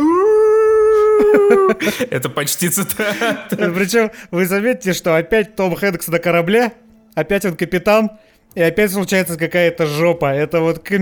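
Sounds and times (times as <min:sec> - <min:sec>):
person imitating a wolf howl: 0:00.0 - 0:01.8
laughter: 0:01.1 - 0:04.1
speech: 0:01.4 - 0:11.0.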